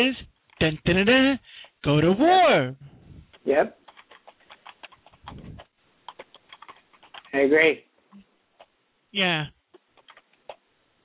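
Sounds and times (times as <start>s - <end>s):
speech: 0.0s - 3.8s, 7.3s - 7.9s, 9.2s - 9.6s
typing on a computer keyboard: 3.3s - 7.4s, 9.8s - 10.6s.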